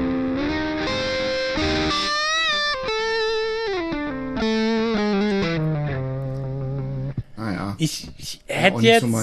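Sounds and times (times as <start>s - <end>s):
distorted electric guitar with saturated digital multi-effect tone: 0.0s - 7.4s
speech: 7.8s - 9.2s.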